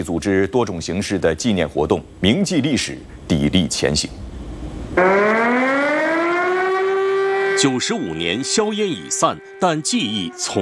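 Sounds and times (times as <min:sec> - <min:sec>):
speech: 0:00.0 - 0:04.3, 0:05.0 - 0:05.4, 0:07.6 - 0:10.5
air raid siren wailing at military barracks: 0:05.0 - 0:10.5.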